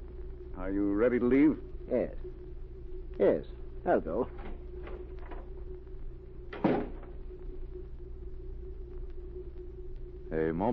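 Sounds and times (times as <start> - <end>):
steady low mechanical hum and rumble: 0.0 - 10.7
speech: 0.6 - 2.5, 3.2 - 4.5, 10.3 - 10.7
door shutting with a dull thud: 6.5 - 7.1.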